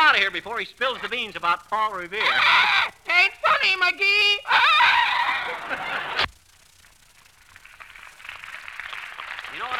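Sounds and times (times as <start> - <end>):
speech: 0.2 - 4.8, 5.5 - 6.3
parrot squawking: 2.2 - 3.7, 4.4 - 5.6.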